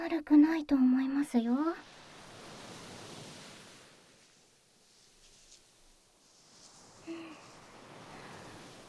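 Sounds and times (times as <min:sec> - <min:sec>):
speech: 0:00.1 - 0:02.0
ocean waves washing over sand: 0:01.8 - 0:08.8.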